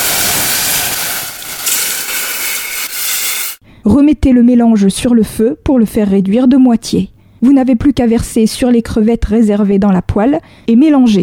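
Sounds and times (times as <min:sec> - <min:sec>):
dry cider and calvados flambéing in a small saucepan: 0:00.0 - 0:03.6
speech: 0:03.9 - 0:11.2.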